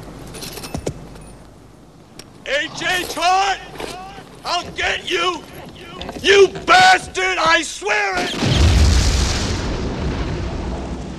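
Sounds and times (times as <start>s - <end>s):
speech: 2.5s - 5.6s, 6.2s - 8.6s
cinematic film explosion at a windmill: 8.2s - 11.1s.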